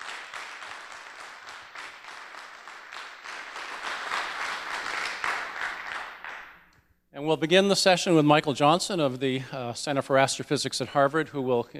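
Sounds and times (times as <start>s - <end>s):
audience at a scientific meeting applauding: 0.0s - 6.6s
speech: 7.2s - 11.7s.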